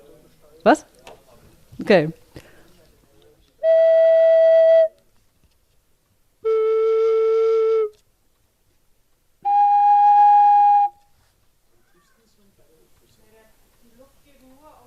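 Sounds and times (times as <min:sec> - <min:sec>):
speech: 0:00.6 - 0:00.9, 0:01.8 - 0:02.2
piping whistle tones from a pipe: 0:03.6 - 0:05.0, 0:06.4 - 0:08.0, 0:09.4 - 0:11.1.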